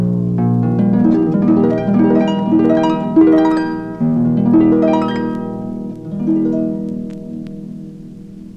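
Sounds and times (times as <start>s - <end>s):
harp playing flowing arpeggios: 0.4s - 8.5s.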